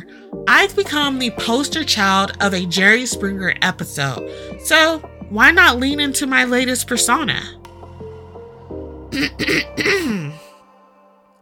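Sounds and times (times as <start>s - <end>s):
speech: 0.4s - 7.6s, 9.2s - 10.2s
person giving a deep throat clearing: 8.7s - 10.6s.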